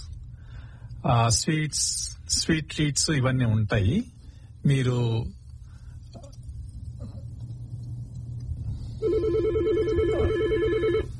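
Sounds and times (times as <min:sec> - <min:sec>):
low rumble: 0:00.0 - 0:11.1
speech: 0:01.0 - 0:05.4
telephone ringing with a warbling electronic trill: 0:09.0 - 0:11.1.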